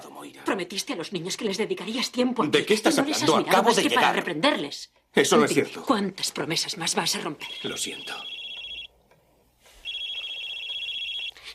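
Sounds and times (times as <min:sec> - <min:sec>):
speech: 0:00.2 - 0:08.4
telephone ringing with a high trilling electronic tone: 0:07.4 - 0:09.0, 0:09.7 - 0:11.5
hiss: 0:07.4 - 0:11.5.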